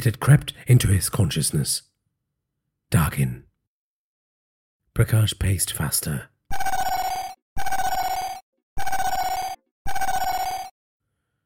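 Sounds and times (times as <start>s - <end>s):
speech: 0.0s - 1.9s, 2.9s - 3.5s, 5.0s - 6.3s
phone alarm ringing: 6.5s - 10.8s.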